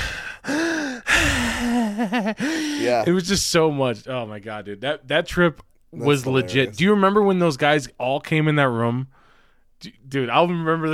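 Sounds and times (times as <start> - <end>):
person imitating heavy panting during a workout: 0.0 - 3.1
speech: 2.0 - 9.2, 9.8 - 10.9.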